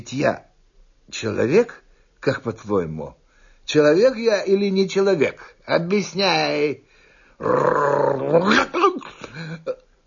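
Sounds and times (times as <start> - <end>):
speech: 0.0 - 0.5, 1.1 - 9.8
dog growling: 7.4 - 8.6.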